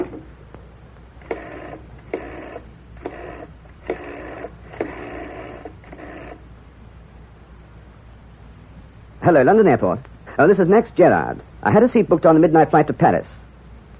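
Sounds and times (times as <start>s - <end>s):
telephone rotary dial whirring: 0.0s - 0.3s, 1.2s - 6.4s
speech: 9.2s - 13.4s.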